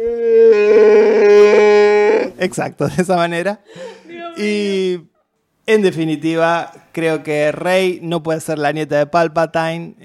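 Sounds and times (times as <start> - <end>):
person vocally imitating a Wookiee roar: 0.0 - 2.4
speech: 2.4 - 5.1, 5.7 - 10.0.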